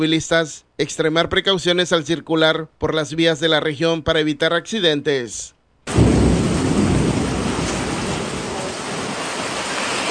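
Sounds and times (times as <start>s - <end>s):
speech: 0.0s - 6.2s
heavy rain: 5.9s - 10.0s.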